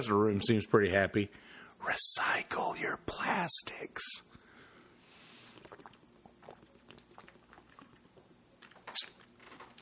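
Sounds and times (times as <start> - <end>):
speech: 0.0 - 4.3
person drinking with wet sloshing and mouth clicks: 4.8 - 9.8
gulp: 5.5 - 9.4.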